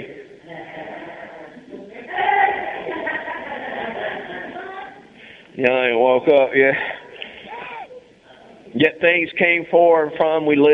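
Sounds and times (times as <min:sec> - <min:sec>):
laughter: 0:00.4 - 0:05.0
speech: 0:05.6 - 0:07.0, 0:08.8 - 0:10.7
human voice mimicking a sheep's bleat: 0:07.5 - 0:08.0.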